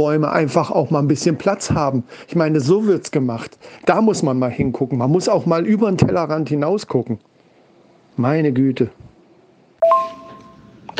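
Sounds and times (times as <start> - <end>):
speech: 0.0 - 7.3, 8.2 - 9.1
glasses clinking in a toast: 9.8 - 10.8.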